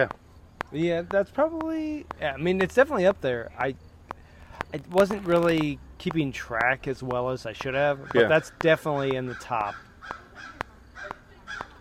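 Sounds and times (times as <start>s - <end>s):
speech: 0.0s - 3.9s, 4.7s - 10.2s
crows cawing harshly: 7.6s - 11.7s.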